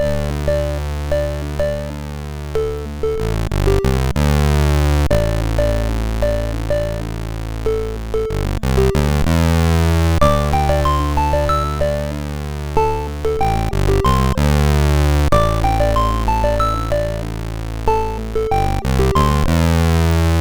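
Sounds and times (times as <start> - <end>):
MOS6581R4 SID sound chip synthesizer: 0.0 - 20.4.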